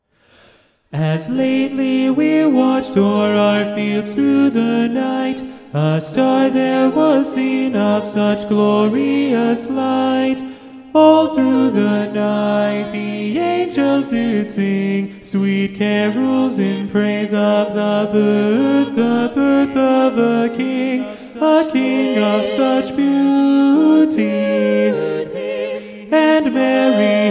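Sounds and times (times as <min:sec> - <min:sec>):
SATB choir singing with tenor predominant: 0:01.0 - 0:27.2.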